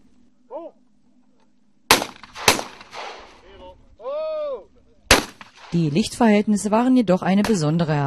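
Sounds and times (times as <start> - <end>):
short voiced call: 0.4 - 0.8, 3.4 - 4.8
loud sharp gunshots at clay pigeon target with rolling outdoor echo: 1.9 - 3.4, 5.1 - 6.0
speech: 5.7 - 8.0.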